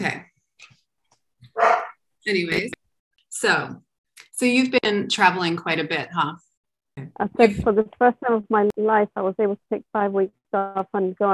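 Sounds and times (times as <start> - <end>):
dog barking: 1.5 - 2.0
speech: 2.3 - 2.8, 3.4 - 3.8, 4.4 - 6.5, 7.1 - 11.3.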